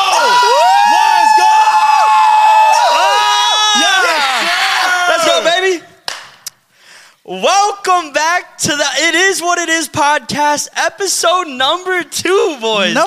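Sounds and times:
group of people yelling and cheering: 0.0 - 6.0
speech: 8.0 - 13.0.

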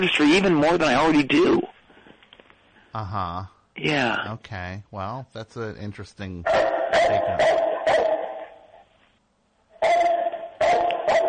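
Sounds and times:
speech: 0.0 - 1.7, 2.9 - 8.2
dog barking: 6.5 - 8.6, 9.8 - 11.2.

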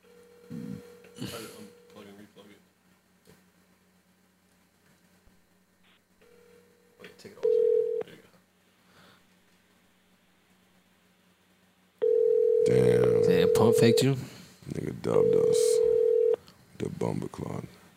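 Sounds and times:
noise: 0.0 - 17.9
speech: 1.2 - 1.5, 13.8 - 14.3, 15.1 - 15.8, 17.0 - 17.8
phone ringback tone: 7.4 - 8.0, 12.0 - 14.2, 15.1 - 16.4.

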